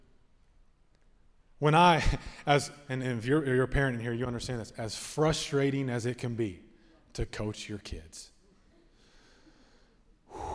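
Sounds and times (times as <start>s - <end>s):
speech: 1.6s - 6.6s, 7.2s - 8.3s
deep breath drawn in: 8.9s - 10.5s.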